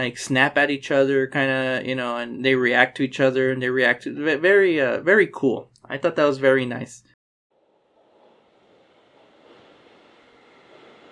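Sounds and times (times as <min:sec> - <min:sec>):
speech: 0:00.0 - 0:07.1
train rumbling through a subway station: 0:07.6 - 0:11.1.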